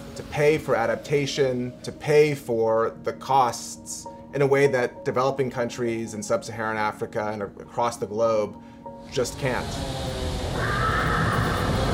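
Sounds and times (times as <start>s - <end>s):
speech: 0.2s - 10.8s
horse neighing loudly: 10.6s - 11.9s.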